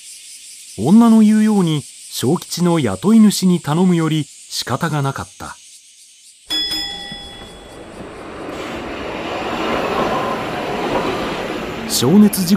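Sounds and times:
speech: 0.8 - 5.6, 12.0 - 12.5
electric tram running on rails: 6.5 - 12.5.

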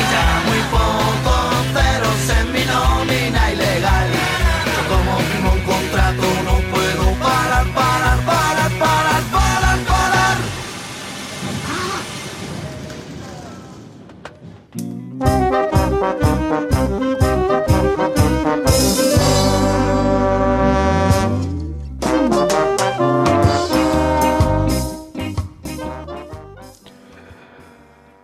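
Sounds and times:
loud pop-rock song with driving drumbeat and full band: 0.0 - 10.8, 14.8 - 27.6.

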